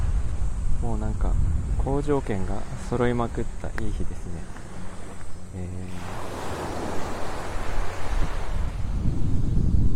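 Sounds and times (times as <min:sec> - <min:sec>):
wind buffeting: 0:00.0 - 0:09.9
speech: 0:01.0 - 0:04.6, 0:05.5 - 0:06.3
morning waves washing onto the shore at the seaside: 0:02.0 - 0:09.0.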